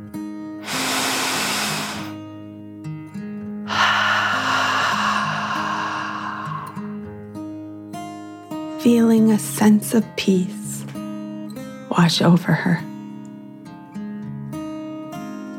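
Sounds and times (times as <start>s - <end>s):
deep breath in and out: 0.6s - 2.2s, 3.7s - 7.2s
soft sustained music tones: 7.0s - 15.5s
speech: 8.8s - 10.6s, 12.0s - 12.9s.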